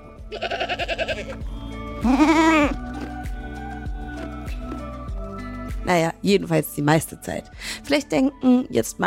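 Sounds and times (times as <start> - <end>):
goats bleating while grazing near an active volcano: 0.3 - 1.4, 2.0 - 2.8
speech: 0.3 - 2.4, 5.9 - 9.0.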